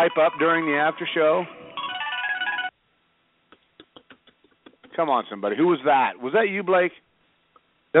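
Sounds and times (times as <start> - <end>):
speech: 0.0 - 1.6, 5.0 - 7.0
phone ringtone with bright tonal melody: 0.0 - 2.8.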